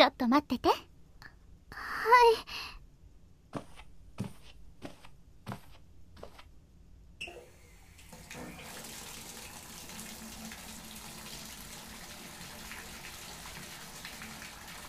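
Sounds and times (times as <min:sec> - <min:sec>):
speech: 0:00.0 - 0:00.9, 0:02.0 - 0:02.8
hot water running into a bathtub: 0:07.4 - 0:14.8.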